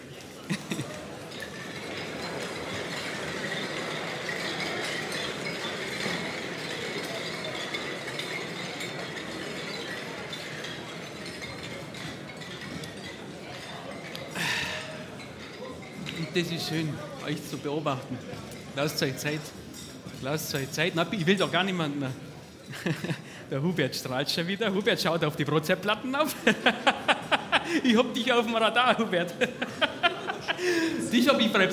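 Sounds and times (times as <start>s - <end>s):
crowd chatter and murmuring voices at an evening gathering: 0.0s - 31.7s
glasses clinking in a toast at an evening gathering: 0.2s - 23.2s, 24.5s - 31.7s
laughter: 0.3s - 1.4s, 22.7s - 23.5s, 26.2s - 31.7s
speech: 16.4s - 19.6s, 20.2s - 27.0s, 27.7s - 29.8s, 30.9s - 31.7s.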